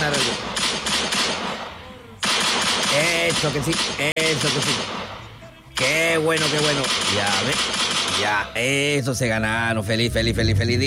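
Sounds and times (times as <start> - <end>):
toy pistol gunshot sound effect: 0.0 - 8.4
speech: 3.4 - 5.2, 5.8 - 10.8.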